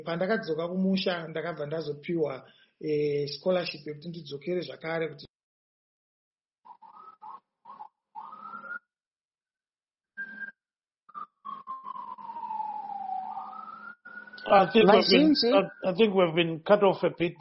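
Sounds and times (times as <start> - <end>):
speech: 0.0 - 5.3, 14.5 - 17.3
police sirens wailing outside: 11.4 - 16.3.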